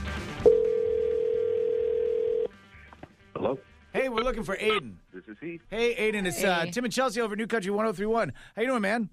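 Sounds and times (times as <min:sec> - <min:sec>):
telephone dial tone: 0:00.5 - 0:02.5
speech: 0:04.3 - 0:09.1.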